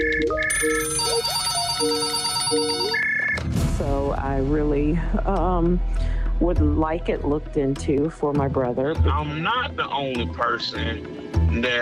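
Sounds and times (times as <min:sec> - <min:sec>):
phone ringing with a bright electronic ringtone: 0:00.0 - 0:03.5
speech: 0:04.1 - 0:11.7.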